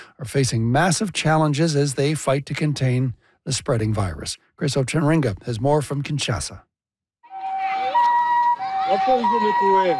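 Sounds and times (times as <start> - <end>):
speech: 0.2 - 6.7, 8.9 - 9.9
two-pitch ambulance siren: 7.2 - 9.9
indistinct voices: 7.3 - 9.9.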